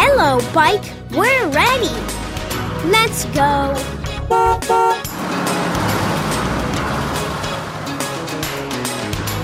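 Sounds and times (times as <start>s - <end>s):
speech: 0.2s - 2.2s, 2.8s - 5.1s
bus engine rumbling: 2.0s - 9.4s
bus horn toots: 4.2s - 6.2s.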